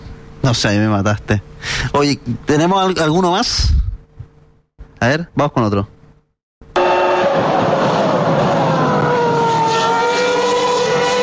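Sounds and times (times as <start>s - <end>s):
speech: 0.4s - 3.8s, 5.0s - 6.0s
V10 Formula One engine screaming: 6.7s - 11.2s.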